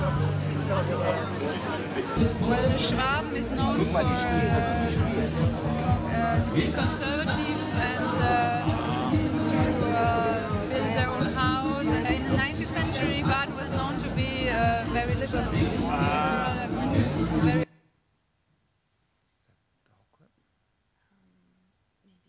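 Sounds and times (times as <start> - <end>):
dense murmur of many voices talking at once: 0.0 - 17.7
speech: 0.8 - 8.5.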